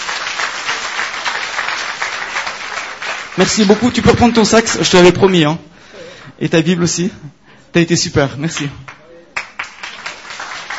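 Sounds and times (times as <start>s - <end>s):
audience applause: 0.0s - 4.6s, 9.4s - 10.7s
speech: 3.4s - 5.7s, 6.4s - 8.9s.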